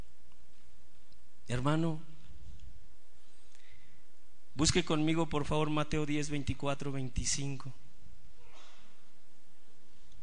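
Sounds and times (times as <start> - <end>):
low steady room hum: 0.0 - 10.2
speech: 1.5 - 2.1, 4.6 - 7.8
sharp breathy sneeze: 8.4 - 9.0.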